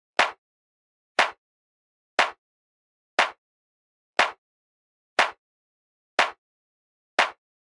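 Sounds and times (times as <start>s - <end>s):
dancefloor pop clap: 0.2s - 0.4s, 1.2s - 1.4s, 2.2s - 2.4s, 3.2s - 3.4s, 4.2s - 4.4s, 5.2s - 5.4s, 6.2s - 6.4s, 7.2s - 7.4s.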